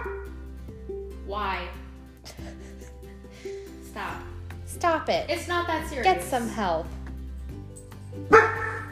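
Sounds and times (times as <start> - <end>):
dog barking: 0.0 - 0.4, 8.3 - 8.8
speech: 4.0 - 7.0.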